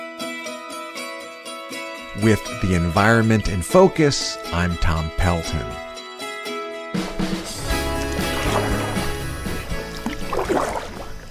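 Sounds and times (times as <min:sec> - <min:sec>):
speech: 0:02.2 - 0:05.9
kayak paddle sloshing through river water: 0:07.1 - 0:11.2.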